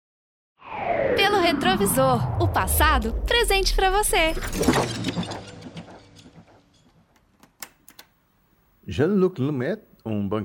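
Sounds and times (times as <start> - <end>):
speech: 1.2 - 5.4, 8.9 - 10.4
clattering glassy burst: 4.1 - 7.2
computer keyboard clicks: 7.4 - 8.2.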